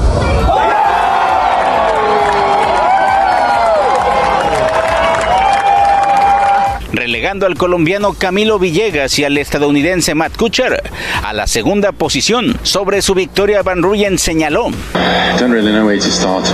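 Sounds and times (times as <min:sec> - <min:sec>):
golf gallery applauding and cheering: 0:00.2 - 0:06.9
speech: 0:07.2 - 0:16.5.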